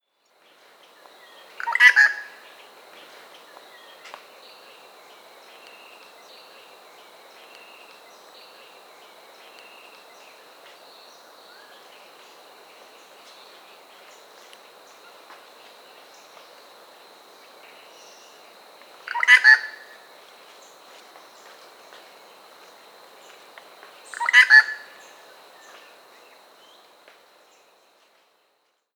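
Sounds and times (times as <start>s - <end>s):
great grey shrike calling: 1.6s - 2.5s, 19.1s - 20.0s, 24.1s - 25.8s.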